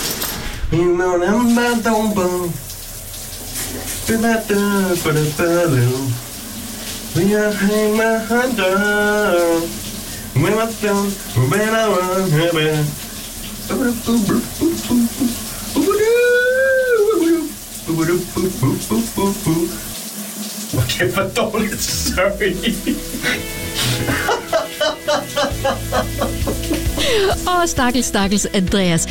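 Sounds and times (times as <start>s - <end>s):
shower water running: 0.0s - 29.1s
man singing in the shower: 0.7s - 2.6s, 4.1s - 6.2s, 7.1s - 9.8s, 10.4s - 13.0s, 13.7s - 19.8s
speech: 0.7s - 2.7s, 4.1s - 6.2s, 7.1s - 9.8s, 10.4s - 13.0s, 13.7s - 15.9s, 17.9s - 19.9s, 20.7s - 24.4s, 27.1s - 29.1s
laughter: 22.1s - 27.5s.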